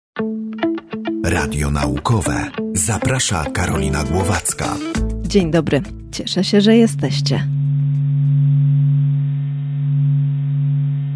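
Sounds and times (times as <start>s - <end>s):
speech: 0.2s - 0.4s, 1.3s - 7.5s
low electronic drone of Sun vibrations sonified from SOHO space probe data: 6.7s - 11.1s.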